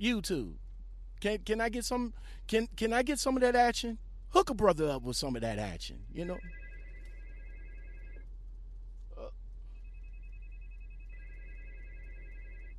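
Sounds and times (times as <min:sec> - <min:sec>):
speech: 0:00.0 - 0:00.6, 0:01.2 - 0:06.6
low hum: 0:00.0 - 0:12.7
electronic phone ringing: 0:06.2 - 0:08.2, 0:09.8 - 0:12.7.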